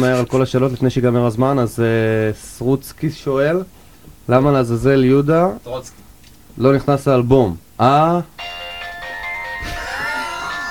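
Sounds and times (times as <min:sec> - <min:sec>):
speech: 0:00.0 - 0:06.0, 0:06.6 - 0:08.6
mobile phone ringtone playing a bright electronic melody: 0:08.4 - 0:10.6.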